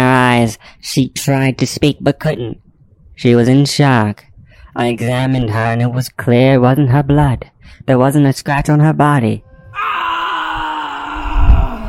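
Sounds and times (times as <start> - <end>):
speech: 0.4 - 10.2
long drawn-out eerie scream from upstairs: 9.7 - 11.8.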